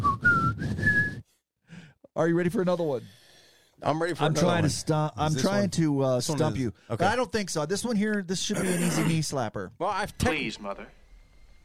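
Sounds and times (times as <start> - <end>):
person whistling: 0.0 - 1.4
speech: 2.2 - 3.2, 3.8 - 11.0.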